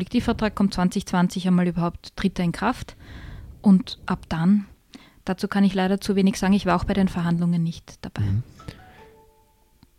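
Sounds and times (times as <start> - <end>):
speech: 0.0 - 4.7, 5.3 - 8.8
faint mobile phone notification chime: 8.6 - 9.8.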